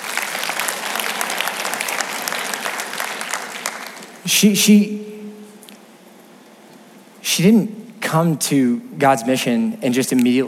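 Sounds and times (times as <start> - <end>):
room full of people applauding: 0.0 - 4.2
speech: 4.2 - 5.0, 7.4 - 10.4.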